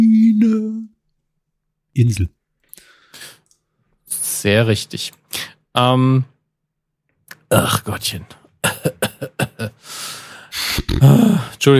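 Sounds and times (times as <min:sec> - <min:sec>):
speech: 0:02.0 - 0:02.4, 0:04.4 - 0:05.2, 0:05.8 - 0:06.3, 0:07.5 - 0:08.4, 0:11.0 - 0:11.7
drawn-out raspy breath: 0:02.7 - 0:03.5, 0:09.8 - 0:11.6
loud fit of coughing: 0:08.6 - 0:09.8.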